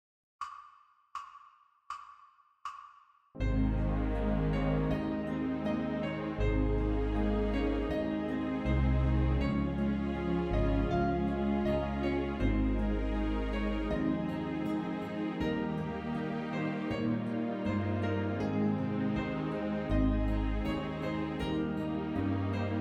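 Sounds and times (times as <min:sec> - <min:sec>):
ensemble playing together in concert in A flat: 0:03.4 - 0:22.7.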